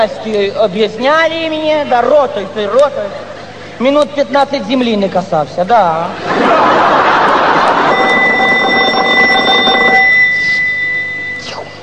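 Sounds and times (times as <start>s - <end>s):
speech: 0.0s - 6.9s
laughter: 6.1s - 8.8s
telephone ringing with a trilling electronic tone: 7.4s - 11.5s.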